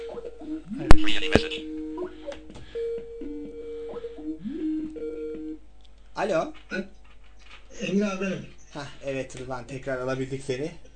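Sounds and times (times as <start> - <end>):
outgoing internet phone call ringing with short electronic tones: 0.8 - 5.6
speech: 6.2 - 7.0, 7.8 - 10.9.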